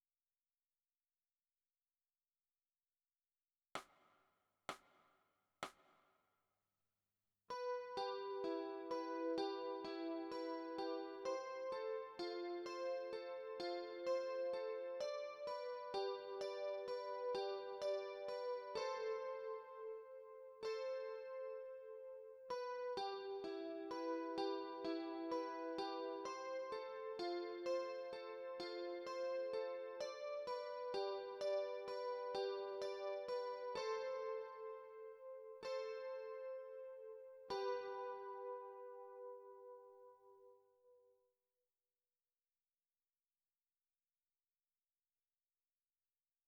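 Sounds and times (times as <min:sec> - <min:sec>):
guitar with chorus effect: 0:07.5 - 0:41.0.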